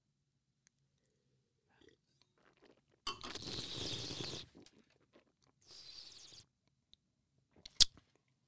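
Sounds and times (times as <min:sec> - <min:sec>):
wine slurped during a tasting: 0:01.8 - 0:06.5.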